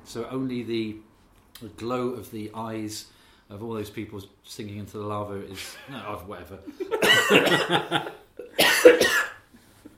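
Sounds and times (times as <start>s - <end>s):
speech: 0.1s - 9.3s
laughter: 6.7s - 8.2s
person coughing harshly: 7.0s - 7.9s, 8.6s - 9.4s.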